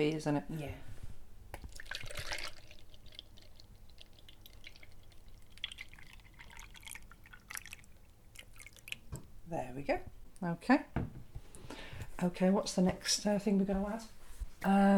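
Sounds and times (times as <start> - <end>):
speech: 0.0 - 0.9, 9.5 - 11.1, 12.2 - 14.9
milk pouring into a container: 1.6 - 9.1
milk dripping: 1.6 - 9.3.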